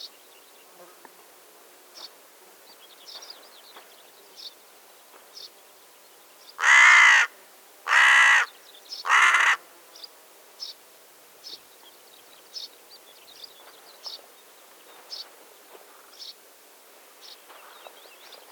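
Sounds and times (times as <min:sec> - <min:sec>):
carrion crow Corvus corone cawing: 0:06.6 - 0:09.6.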